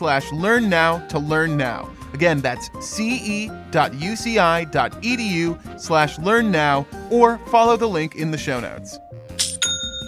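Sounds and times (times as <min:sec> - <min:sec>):
speech: 0:00.0 - 0:09.4
online store sale notification chime: 0:09.4 - 0:10.0.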